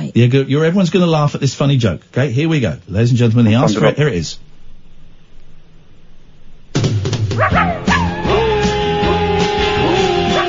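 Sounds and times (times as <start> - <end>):
steady hum: 0.0 - 10.4
speech: 0.2 - 4.4
puppy yipping and barking: 7.4 - 8.5, 9.9 - 10.4.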